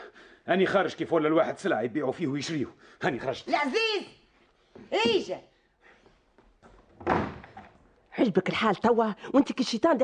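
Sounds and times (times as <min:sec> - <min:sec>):
speech: 0:00.5 - 0:04.2, 0:04.8 - 0:05.5, 0:08.2 - 0:10.0
door shoved open with thud: 0:07.0 - 0:07.6.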